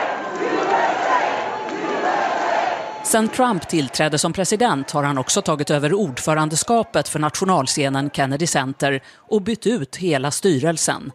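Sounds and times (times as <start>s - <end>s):
large audience cheering and shouting at the Kennedy Center: 0.0s - 8.9s
speech: 3.1s - 11.1s.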